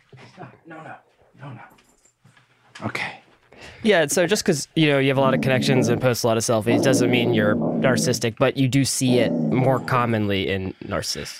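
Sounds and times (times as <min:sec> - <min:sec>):
speech: 0:00.4 - 0:01.9, 0:02.8 - 0:11.3
dog whimpering and yipping: 0:05.2 - 0:08.3.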